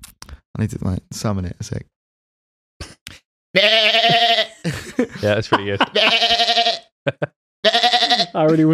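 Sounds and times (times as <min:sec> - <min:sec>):
speech: 0:00.6 - 0:02.0, 0:03.6 - 0:06.4, 0:07.1 - 0:08.7
person imitating a sheep bleat: 0:03.6 - 0:04.6, 0:05.9 - 0:06.8, 0:07.6 - 0:08.5
laughter: 0:04.0 - 0:06.4, 0:07.1 - 0:07.3.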